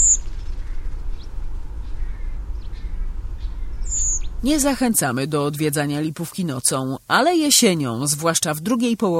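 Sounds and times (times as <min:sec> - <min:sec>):
redwing flight call at night: 0:00.0 - 0:04.4
steady low rumble of night noise: 0:00.0 - 0:09.0
speech: 0:04.4 - 0:09.1.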